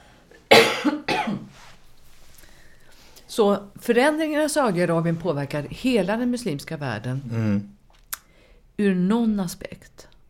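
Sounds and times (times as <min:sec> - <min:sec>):
person coughing: 0:00.5 - 0:01.5
faint breath: 0:02.3 - 0:03.3, 0:08.2 - 0:08.7
speech: 0:03.4 - 0:07.8, 0:08.8 - 0:10.1.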